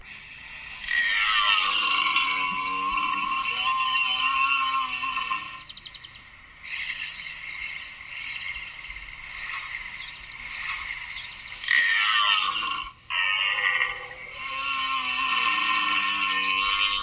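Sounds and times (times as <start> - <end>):
red deer stag bellowing in rut: 0.6 - 5.8, 6.7 - 17.0.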